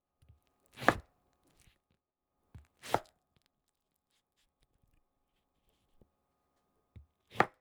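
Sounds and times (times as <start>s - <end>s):
fruit being cut: 0.7s - 1.1s, 2.6s - 3.1s, 7.3s - 7.6s.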